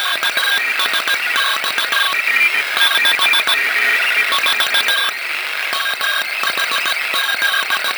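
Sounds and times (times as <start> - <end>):
shortwave radio noise: 0.0 - 7.9.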